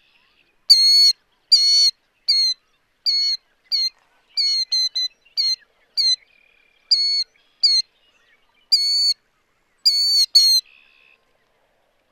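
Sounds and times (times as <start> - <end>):
Killdeer giving shrill clear call notes: 0.7 - 6.2, 6.9 - 7.8, 8.7 - 9.2, 9.9 - 10.7.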